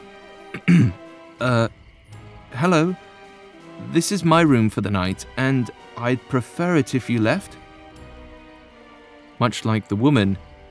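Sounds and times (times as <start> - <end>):
throat clearing: 0.6 - 1.0
speech: 0.8 - 1.8, 2.6 - 3.0, 3.9 - 7.6, 9.4 - 10.5.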